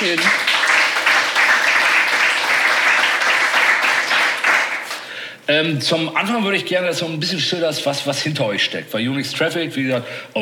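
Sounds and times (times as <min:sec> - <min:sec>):
audience applause: 0:00.0 - 0:05.1
speech: 0:05.5 - 0:10.4.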